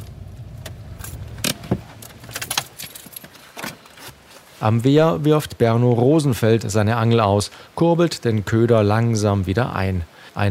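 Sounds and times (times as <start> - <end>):
car engine rumbling as the car comes to a halt: 0.0 - 3.3
sharp metallic clicks and jingles: 0.9 - 4.1
speech: 4.6 - 10.4.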